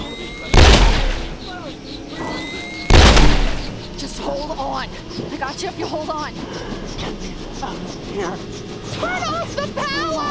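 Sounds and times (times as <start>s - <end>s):
steady mechanical hum of running turbines: 0.0s - 10.2s
gunshots fired to blast a hole through a barrier: 0.3s - 1.6s, 2.9s - 4.1s
speech: 4.1s - 10.2s.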